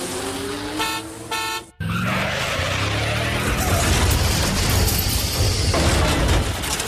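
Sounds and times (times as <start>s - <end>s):
steady roar of traffic engines and tires: 0.0s - 6.6s
car horns honking in sharp bursts: 0.6s - 1.9s
tires skidding: 1.8s - 4.2s.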